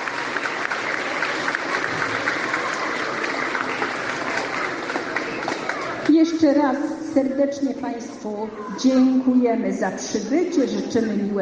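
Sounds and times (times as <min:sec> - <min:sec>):
audience applause: 0:00.0 - 0:06.1
speech: 0:06.4 - 0:11.3.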